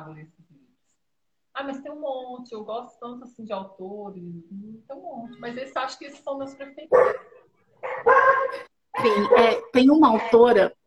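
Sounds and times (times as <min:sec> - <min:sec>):
speech: 0:01.6 - 0:10.8
small female dogs barking and yelping: 0:06.9 - 0:10.7.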